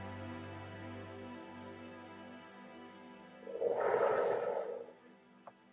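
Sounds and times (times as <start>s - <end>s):
person breathing deeply during a guided relaxation exercise: 3.5s - 5.0s.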